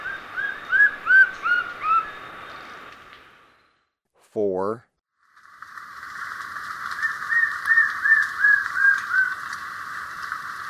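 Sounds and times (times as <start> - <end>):
white-streaked antvireo whistling in Ecuador: 0.0 - 2.2, 7.0 - 9.4
speech: 4.4 - 4.9.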